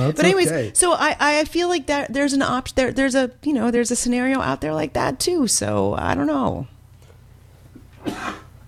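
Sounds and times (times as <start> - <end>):
speech: 0.0 - 6.8
man coughing with a lingering cough: 8.0 - 8.5.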